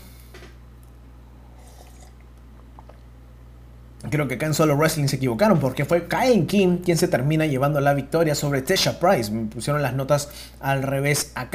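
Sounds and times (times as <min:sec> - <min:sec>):
steady low hum: 0:00.0 - 0:11.5
person sipping water with slurps and swallows: 0:01.3 - 0:03.2
speech: 0:04.0 - 0:11.5.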